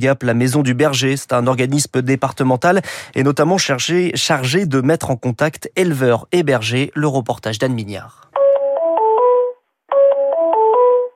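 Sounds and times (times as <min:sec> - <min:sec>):
speech: 0:00.0 - 0:08.3
telephone ringing with a stepped electronic melody: 0:08.4 - 0:11.1.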